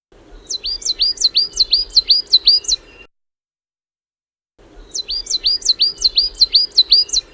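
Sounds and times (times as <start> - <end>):
coal tit song: 0.2 - 3.1, 4.6 - 7.3.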